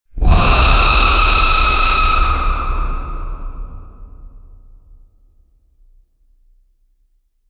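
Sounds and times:
rage scream: 0:00.2 - 0:04.5.

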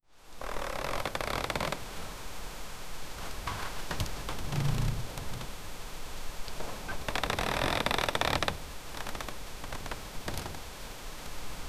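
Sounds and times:
dull prolonged creak of architecture: 0:00.4 - 0:01.8, 0:03.4 - 0:05.5, 0:06.7 - 0:10.6.

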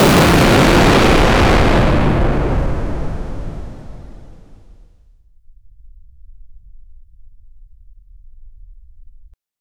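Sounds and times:
chemical explosion: 0:00.0 - 0:04.7.

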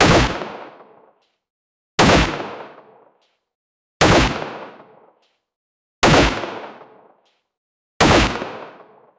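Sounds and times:
heavy clear gunshots: 0:00.0 - 0:00.6, 0:02.0 - 0:02.7, 0:04.0 - 0:04.8, 0:06.0 - 0:06.8, 0:08.0 - 0:08.9.

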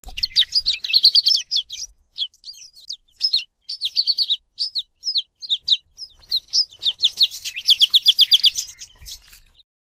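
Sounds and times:
small bird chirping: 0:00.0 - 0:09.7.

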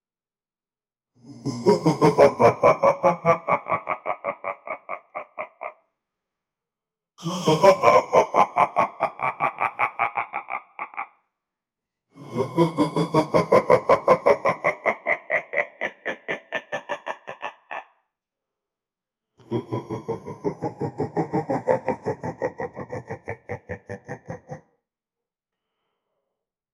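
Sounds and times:
evil laugh: 0:01.3 - 0:05.9, 0:07.2 - 0:11.2, 0:12.2 - 0:18.1, 0:19.4 - 0:24.7.

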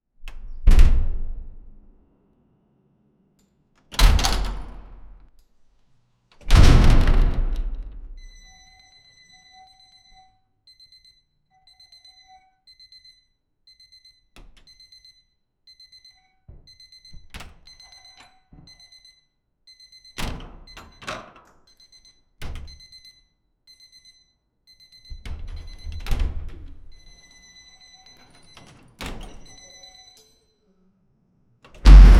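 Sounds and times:
large heavy door opening indoors: 0:03.9 - 0:05.2, 0:06.4 - 0:08.4, 0:31.8 - 0:32.1.

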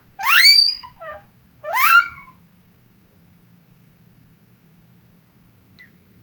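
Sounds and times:
bed squeaking: 0:00.2 - 0:02.3.

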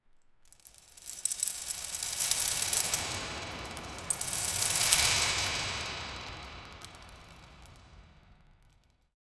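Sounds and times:
ghostly chains rattling in a dungeon: 0:00.5 - 0:08.0.

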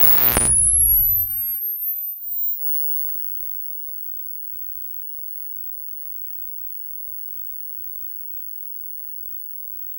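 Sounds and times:
old cathode ray tube monitor powering on: 0:00.0 - 0:01.4.

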